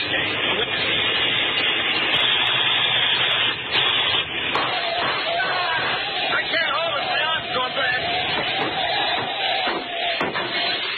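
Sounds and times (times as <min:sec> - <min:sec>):
car engine rumbling around the corner: 0:00.0 - 0:10.9.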